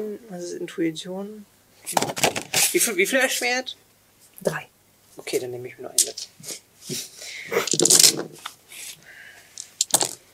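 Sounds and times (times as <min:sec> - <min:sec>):
speech: 0:00.0 - 0:08.5
handful of dice clattering across a hard surface: 0:07.6 - 0:08.4, 0:09.6 - 0:10.2.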